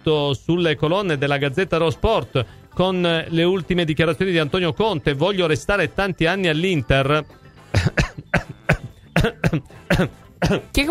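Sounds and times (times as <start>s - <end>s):
speech: 0.0s - 8.4s, 9.2s - 10.8s
person coughing harshly: 7.7s - 10.8s.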